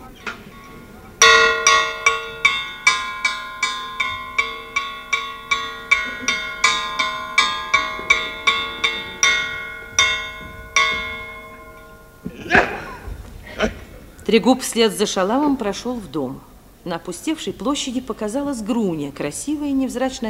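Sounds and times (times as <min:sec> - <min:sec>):
bell clanging: 0:00.5 - 0:12.7
laughter: 0:12.2 - 0:14.1
speech: 0:14.3 - 0:20.2.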